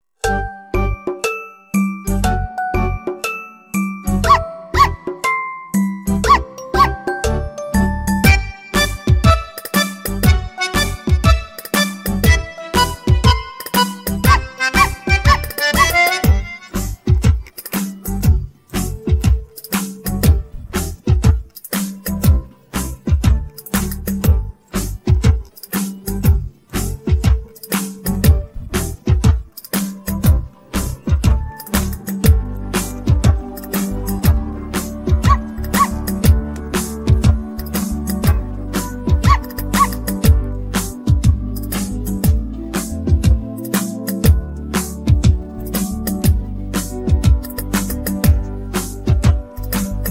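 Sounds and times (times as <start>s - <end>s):
instrumental Tamil children's rhyme music: 0.0s - 50.0s.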